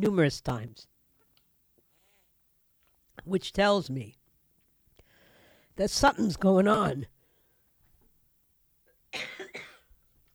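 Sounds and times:
speech: 0.0 - 0.9, 3.2 - 4.2, 5.8 - 7.2
harsh coughs clearing a rough throat: 9.2 - 9.9.

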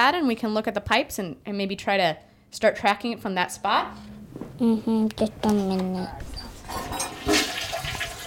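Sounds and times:
speech: 0.1 - 7.1
toilet flushing: 6.6 - 8.2.

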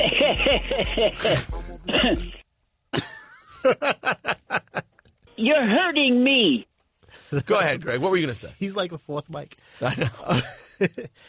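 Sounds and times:
man on a phone call laughing heartily: 0.0 - 5.0, 9.8 - 11.2
speech: 0.4 - 4.6, 5.4 - 6.7, 7.3 - 11.2
man on a phone call coughing: 1.0 - 2.4.

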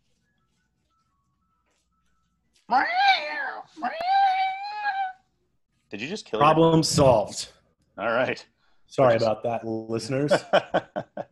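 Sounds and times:
speech: 2.7 - 3.1, 3.7 - 4.2, 5.9 - 11.3
female cat yowling meows while eating tape: 2.7 - 5.2
laughter: 10.2 - 11.3.

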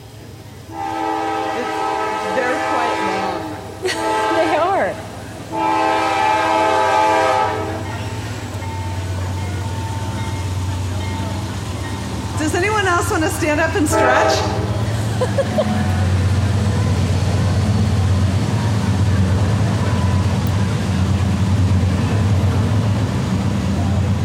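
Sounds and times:
passing train roar and rumble: 0.0 - 24.2
train horn blasts: 0.7 - 8.2, 13.7 - 14.9
laughter: 3.7 - 5.0, 14.8 - 16.4
speech: 13.4 - 14.6, 15.2 - 16.0.

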